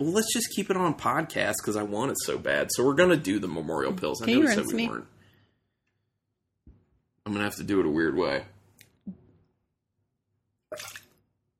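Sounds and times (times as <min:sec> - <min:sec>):
speech: 0:00.0 - 0:05.2, 0:07.3 - 0:08.5, 0:10.7 - 0:11.0
soft gulp: 0:10.7 - 0:11.2
drinking water spat out of a mouth into a glass: 0:10.7 - 0:11.3.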